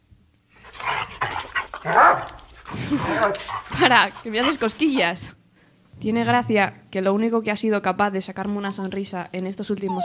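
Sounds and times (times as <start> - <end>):
dog barking: 1.8 - 2.4
speech: 1.8 - 5.4, 6.0 - 10.0.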